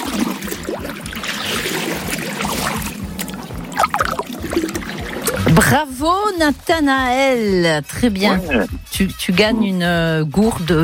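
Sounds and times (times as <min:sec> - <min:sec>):
steady rhythmic oar strokes rowing a boat: 0:00.0 - 0:05.6
water splashing and trickling around a rowed boat: 0:00.0 - 0:07.4
speech: 0:05.7 - 0:10.8.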